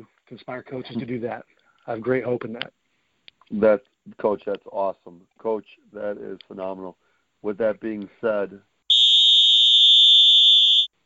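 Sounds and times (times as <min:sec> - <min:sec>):
speech: 0:00.0 - 0:02.8, 0:03.5 - 0:08.7
electronic end-of-game buzzer: 0:08.9 - 0:10.9.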